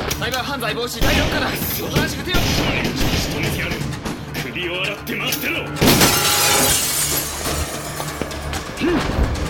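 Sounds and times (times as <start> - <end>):
speech: 0.2 - 4.0, 4.5 - 6.9, 8.8 - 9.4
glass window being smashed: 5.8 - 8.3
glass debris tinkling and scattering: 5.8 - 8.4.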